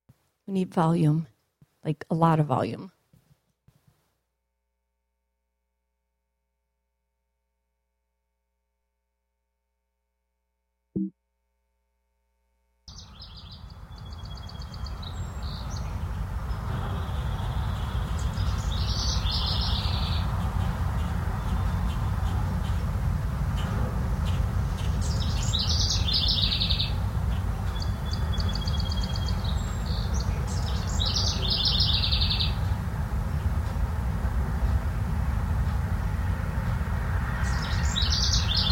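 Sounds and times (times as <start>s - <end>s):
speech: 0.5s - 3.0s
birds singing with chirping and trilling: 12.9s - 20.4s, 24.3s - 32.7s, 37.4s - 38.7s
steady low rumble of wind or outdoor noise: 12.9s - 38.7s.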